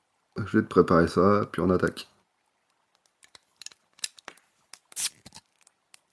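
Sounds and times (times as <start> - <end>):
speech: 0.4 - 2.1
bottle caps being opened: 3.2 - 6.1.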